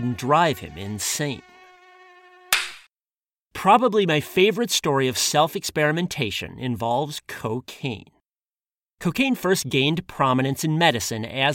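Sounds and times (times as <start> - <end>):
speech: 0.0 - 1.5, 3.6 - 8.1, 9.0 - 11.5
mosquito whining: 0.0 - 2.5
sharp slap: 2.5 - 2.9.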